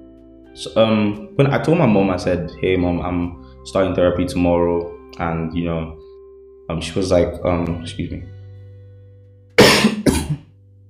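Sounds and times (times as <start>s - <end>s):
speech: 0.6s - 6.0s, 6.7s - 8.4s
person coughing: 9.6s - 10.5s.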